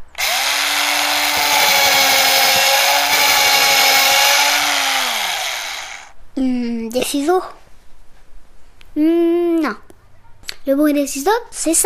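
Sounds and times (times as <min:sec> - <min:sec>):
electric drill motor whirring: 0:00.0 - 0:06.1
speech: 0:06.4 - 0:07.6, 0:10.7 - 0:11.8.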